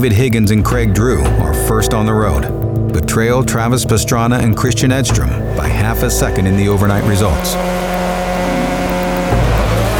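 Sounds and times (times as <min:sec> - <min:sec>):
speech: 0:00.0 - 0:08.0
Subaru rally car engine setting off from the start of a gravel stage: 0:05.4 - 0:09.9.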